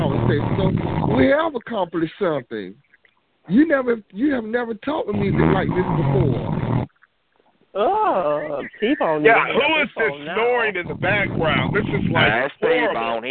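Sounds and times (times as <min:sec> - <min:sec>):
person snoring through a muffled tinny phone line: 0:00.0 - 0:01.3, 0:05.2 - 0:06.9, 0:10.9 - 0:12.4
speech: 0:00.3 - 0:02.8, 0:03.5 - 0:06.6, 0:07.7 - 0:13.2.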